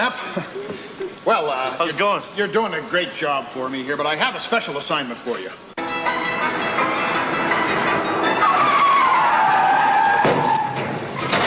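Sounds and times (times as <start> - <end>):
speech: 1.3 - 5.7
road noise: 5.7 - 11.4
car tires squealing under heavy braking: 8.2 - 11.4.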